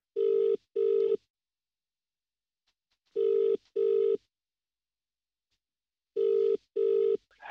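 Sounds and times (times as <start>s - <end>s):
telephone dialing tones: 0.2s - 1.2s, 3.2s - 4.2s, 6.2s - 7.2s.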